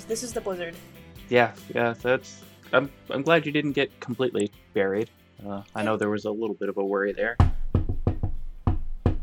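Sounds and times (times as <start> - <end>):
speech: 0.1 - 7.5
knocking on a door: 7.4 - 9.2.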